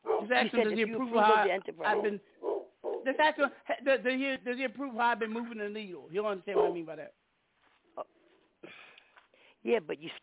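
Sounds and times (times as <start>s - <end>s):
man imitating a dog barking: 0.1s - 3.4s, 6.0s - 6.9s
speech: 0.2s - 2.4s, 3.0s - 7.2s, 8.0s - 8.8s, 9.6s - 10.2s.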